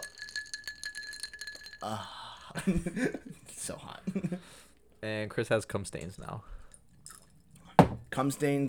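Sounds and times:
ice cubes clinking against a glass: 0.0s - 1.8s
speech: 1.8s - 6.6s, 8.2s - 8.6s.

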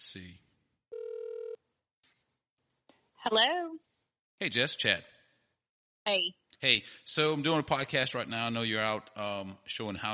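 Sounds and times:
speech: 0.1s - 0.4s, 3.2s - 5.2s, 6.1s - 10.1s
electronic ringback tone on an outgoing phone call: 0.9s - 1.6s.

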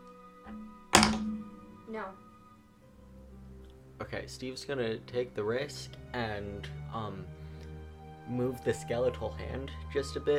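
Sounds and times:
latch being opened slightly: 0.9s - 1.4s
speech: 1.9s - 2.3s, 4.0s - 7.4s, 8.3s - 10.3s.

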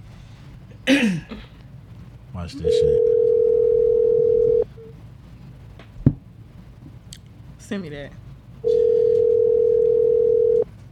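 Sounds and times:
speech: 0.9s - 1.5s, 2.4s - 3.1s, 7.7s - 8.8s
telephone ringback tone of an outgoing call: 2.6s - 4.7s, 8.6s - 10.6s.

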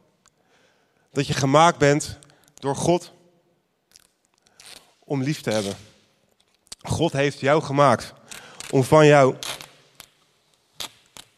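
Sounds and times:
speech: 1.2s - 3.2s, 5.1s - 5.9s, 6.9s - 9.4s
adhesive tape being pulled off a roll: 3.9s - 5.9s, 9.4s - 11.3s.

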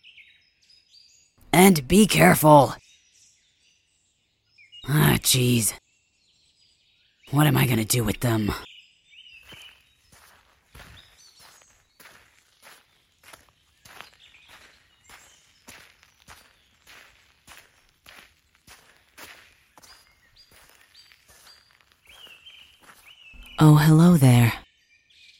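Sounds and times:
faint birdsong: 0.0s - 1.4s, 2.8s - 4.9s, 5.8s - 7.3s, 8.4s - 23.6s, 24.6s - 25.3s
speech: 1.6s - 2.8s, 4.9s - 5.8s, 7.3s - 8.7s, 23.8s - 24.4s
footsteps walking away crunching through woodland ground in the evening: 9.3s - 23.6s.

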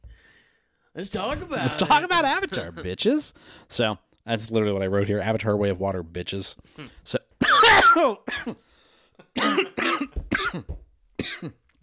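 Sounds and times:
speech: 1.0s - 7.2s, 8.0s - 10.2s, 11.4s - 11.6s
person coughing and sputtering after choking on their own spit: 7.4s - 8.6s, 9.2s - 11.6s.

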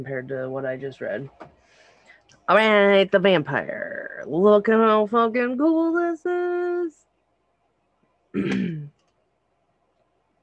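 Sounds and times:
speech: 0.0s - 1.8s, 2.5s - 7.0s, 8.4s - 8.9s
gravelly voiced throat clearing: 8.4s - 8.9s.

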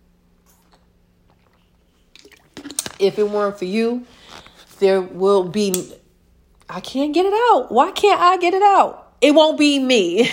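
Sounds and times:
low steady hum: 0.0s - 10.3s
person sipping water: 0.4s - 3.0s
wet mouth and swallowing sounds: 0.4s - 3.0s
speech: 3.0s - 4.2s, 4.8s - 6.0s, 6.7s - 10.3s.

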